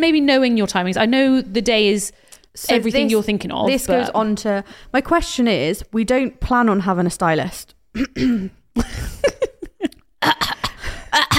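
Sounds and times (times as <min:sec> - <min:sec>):
speech: 0:00.0 - 0:09.4
person clearing throat: 0:07.9 - 0:08.6, 0:10.2 - 0:11.3
person coughing harshly: 0:07.9 - 0:09.0, 0:10.2 - 0:11.3.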